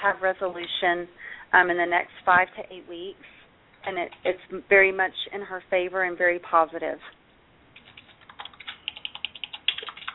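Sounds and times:
speech: 0.0 - 7.2
typing on a computer keyboard: 7.8 - 10.1.

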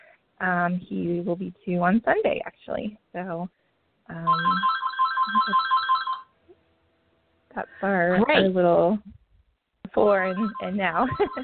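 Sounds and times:
speech: 0.4 - 4.7, 5.3 - 5.8, 7.6 - 9.2, 9.9 - 11.4
phone ringtone playing a bright repeating electronic melody: 4.2 - 6.4, 10.2 - 11.4
laughter: 10.4 - 11.4.

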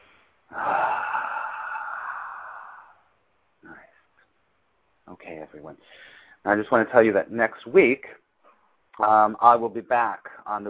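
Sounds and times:
deep breath: 0.0 - 3.2, 5.8 - 6.4
speech: 5.2 - 8.2, 9.0 - 10.6.

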